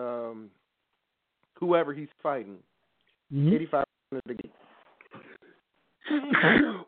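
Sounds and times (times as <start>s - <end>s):
speech: 1.6s - 2.7s, 3.3s - 4.5s, 6.2s - 6.8s
person sneezing: 6.1s - 6.8s.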